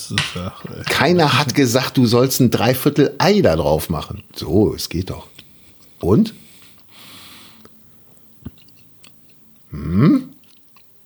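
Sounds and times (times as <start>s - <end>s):
speech: 0.0s - 5.4s, 6.0s - 6.4s, 9.7s - 10.3s
person chewing bread topped with egg and caviar: 5.3s - 9.7s, 10.3s - 11.0s.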